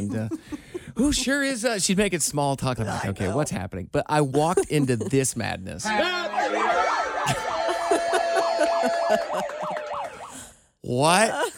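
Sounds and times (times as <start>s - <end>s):
laughter: 0.0s - 1.5s, 4.4s - 10.3s
speech: 0.0s - 7.5s, 10.9s - 11.5s
police siren in rapid yelp mode: 5.9s - 10.5s.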